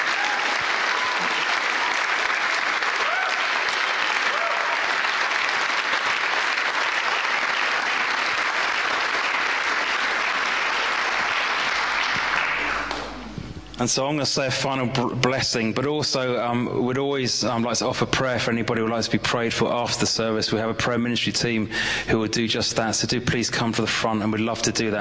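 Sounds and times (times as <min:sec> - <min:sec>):
congregation applauding at a church service: 0:00.0 - 0:13.3
speech: 0:13.8 - 0:25.0.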